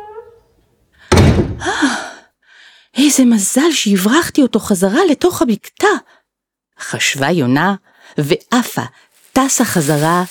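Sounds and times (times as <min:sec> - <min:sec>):
cabin door slamming shut: 0:01.1 - 0:01.6
speech: 0:03.0 - 0:06.2, 0:06.8 - 0:10.2.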